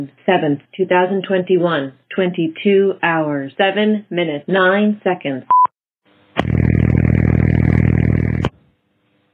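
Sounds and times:
speech: 0:00.0 - 0:05.6
loud harsh electronic buzz of emergency dispatch phone system: 0:06.4 - 0:08.6.

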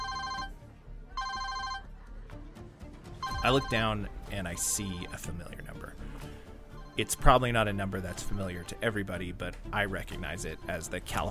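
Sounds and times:
phone ringing in electronic bursts: 0:00.0 - 0:00.6, 0:01.2 - 0:01.9, 0:03.2 - 0:05.5, 0:06.8 - 0:08.5
speech: 0:03.4 - 0:06.0, 0:07.0 - 0:11.2.

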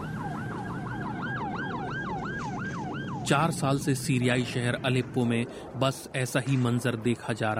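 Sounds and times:
ambulance siren wailing in the Syrian city of Aleppo: 0:00.0 - 0:05.2
low rumble of traffic or engine noise: 0:00.0 - 0:07.5
speech: 0:03.3 - 0:07.5.

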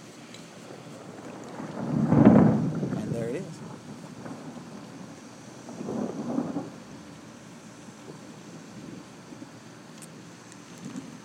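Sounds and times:
light rain: 0:00.0 - 0:11.2
steady wind hiss: 0:00.0 - 0:11.2
low rolling thunder during a thunderstorm: 0:00.6 - 0:09.6.

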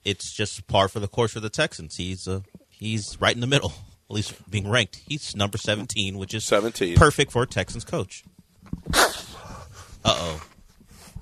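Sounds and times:
speech: 0:00.0 - 0:09.2, 0:10.0 - 0:10.5
person sneezing: 0:08.9 - 0:10.4.

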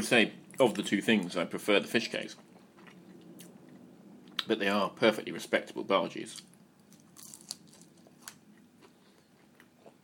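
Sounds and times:
speech: 0:00.0 - 0:02.5, 0:04.5 - 0:06.5
person biting into and chewing a fried snack: 0:06.3 - 0:10.0.

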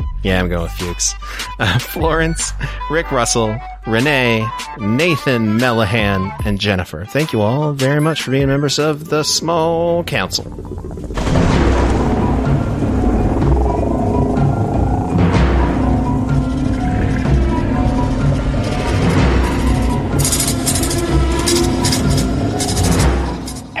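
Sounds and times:
speech: 0:00.2 - 0:11.8
deep continuous thunder rumbling in a storm sound effect: 0:09.7 - 0:23.7.

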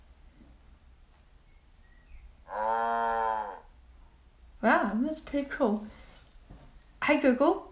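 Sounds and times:
cow mooing: 0:02.4 - 0:03.7
speech: 0:04.9 - 0:06.0, 0:07.1 - 0:07.6.

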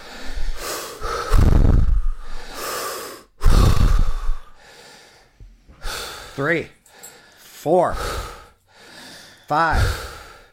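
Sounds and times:
deep breaths in and out through the mouth: 0:00.0 - 0:10.5
speech: 0:06.4 - 0:06.8, 0:07.6 - 0:08.3, 0:09.5 - 0:10.1.

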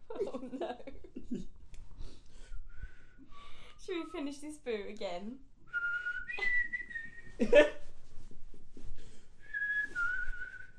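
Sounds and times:
speech: 0:03.9 - 0:05.5, 0:07.4 - 0:07.8
person whistling while being tickled: 0:05.7 - 0:07.4, 0:09.4 - 0:10.7.

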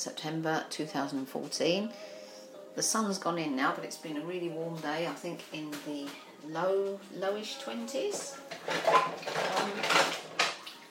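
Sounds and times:
speech: 0:00.0 - 0:02.2, 0:02.8 - 0:10.2
dishes clattering as they are loaded into a kitchen dishwasher: 0:08.1 - 0:10.9.

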